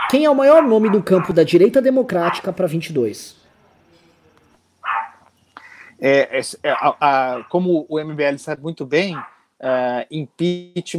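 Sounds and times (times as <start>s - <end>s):
dog barking: 0.0s - 1.4s, 2.2s - 2.5s, 4.8s - 5.3s, 6.7s - 7.6s, 9.1s - 9.4s
speech: 0.1s - 3.4s, 6.0s - 10.9s.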